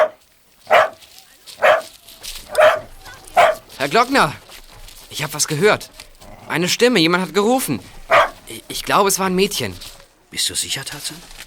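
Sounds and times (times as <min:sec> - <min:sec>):
dog on a leash barking: 0:00.0 - 0:01.0, 0:01.6 - 0:01.9, 0:02.5 - 0:03.7, 0:08.1 - 0:08.4
speech: 0:03.8 - 0:04.4, 0:05.1 - 0:11.4.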